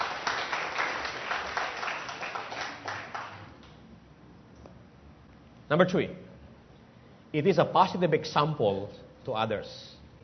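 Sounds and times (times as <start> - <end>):
congregation applauding during a worship service: 0.0 - 3.7
speech: 5.7 - 6.3, 7.3 - 9.9.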